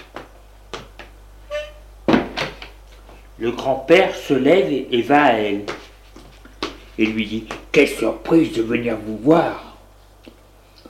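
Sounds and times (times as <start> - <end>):
drawing room door creaking and swinging open: 1.5 - 2.5
speech: 3.4 - 5.8, 7.0 - 9.7.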